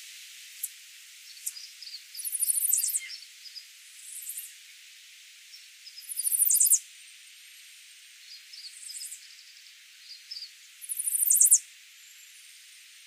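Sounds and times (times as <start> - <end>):
Chestnut-sided warbler Setophaga pensylvanica song: 0.6 - 13.0
soft Chestnut-sided warbler chips and twitters: 1.3 - 4.5, 5.8 - 6.8, 8.5 - 12.3.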